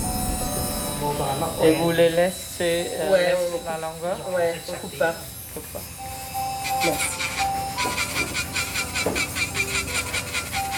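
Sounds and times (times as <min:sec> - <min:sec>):
speech: 0:01.0 - 0:06.1, 0:06.8 - 0:07.3
nail file rasping in a nail salon in Paris: 0:05.1 - 0:10.7.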